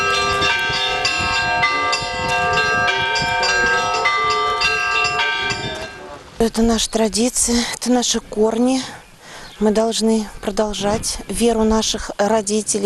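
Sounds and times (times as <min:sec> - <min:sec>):
church bells ringing a peal at a church procession: 0:00.0 - 0:06.2
speech: 0:06.4 - 0:09.0, 0:09.6 - 0:12.8.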